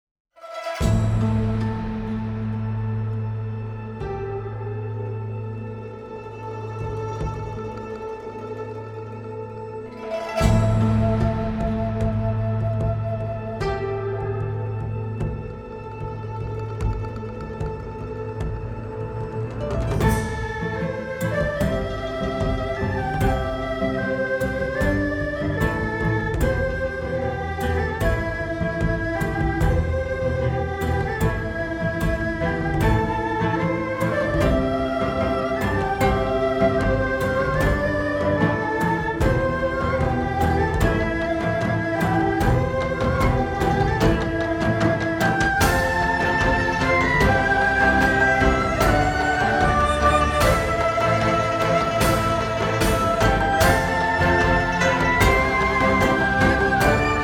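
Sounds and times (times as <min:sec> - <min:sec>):
ethnic orchestra playing: 0:00.4 - 0:57.2.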